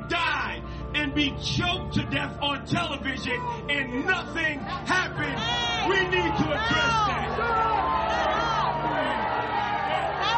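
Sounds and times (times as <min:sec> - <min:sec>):
speech: 0:01.2 - 0:08.3
large crowd booing loudly: 0:04.6 - 0:10.3.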